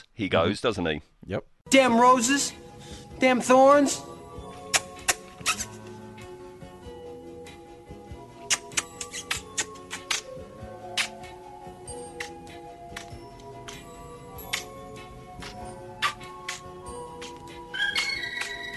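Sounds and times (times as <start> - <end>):
speech: 0.0 - 4.2
soft sustained music: 1.7 - 18.7
puppet plant making wet sucking puckering pops and smacks: 4.6 - 5.9, 8.4 - 11.4, 12.2 - 13.9, 14.5 - 14.8, 15.4 - 17.5.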